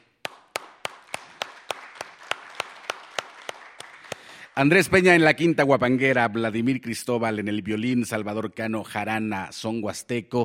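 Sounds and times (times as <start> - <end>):
audience clapping: 0.0 - 5.5
speech: 4.6 - 10.4.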